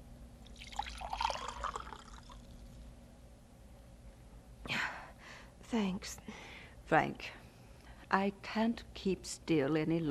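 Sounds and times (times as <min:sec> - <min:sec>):
water poured into a drinking glass: 0:00.4 - 0:02.7
speech: 0:05.7 - 0:07.4, 0:08.1 - 0:10.0.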